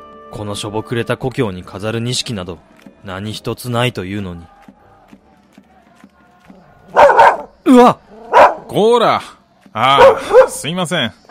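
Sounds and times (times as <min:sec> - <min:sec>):
speech: 0:00.3 - 0:04.6, 0:07.7 - 0:08.0, 0:08.7 - 0:11.2
large dog barking deeply: 0:06.8 - 0:08.8, 0:09.9 - 0:10.6.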